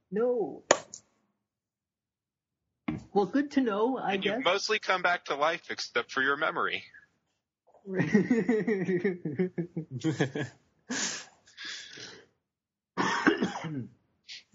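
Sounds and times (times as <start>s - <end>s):
speech: 0.1s - 0.8s, 3.1s - 7.0s, 7.8s - 11.2s
laughter: 7.9s - 11.2s
person with a bad cough coughing harshly: 13.0s - 13.9s
throat clearing: 13.0s - 13.9s.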